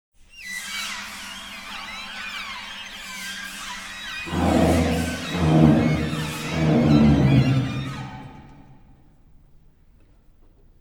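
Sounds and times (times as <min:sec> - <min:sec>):
glissando in opposite registers: 0:04.2 - 0:08.8.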